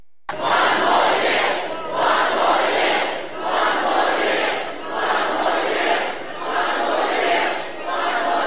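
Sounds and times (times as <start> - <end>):
large crowd of fans cheering and chanting at celebration: 0.3 - 8.4.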